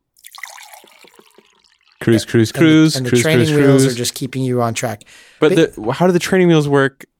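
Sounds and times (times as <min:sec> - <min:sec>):
water splashing: 0:00.2 - 0:02.9
speech: 0:02.0 - 0:07.1.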